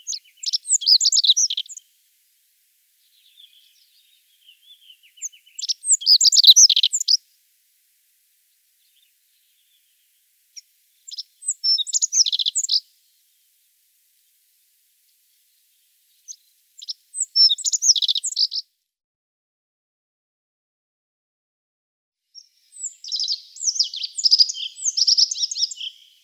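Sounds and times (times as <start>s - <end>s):
rock bunting singing jingling song phrases: 0.0s - 1.8s, 3.0s - 7.2s, 10.6s - 12.9s, 16.3s - 18.6s, 22.4s - 26.2s
faint thin bird notes: 0.0s - 2.0s, 2.9s - 7.4s, 8.4s - 13.6s, 14.2s - 18.7s, 22.4s - 26.2s.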